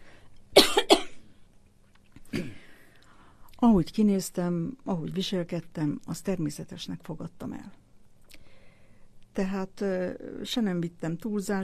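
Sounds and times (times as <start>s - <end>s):
person coughing and clearing throat: 0.6s - 1.2s, 2.3s - 2.8s
speech: 3.6s - 7.8s, 9.4s - 11.6s.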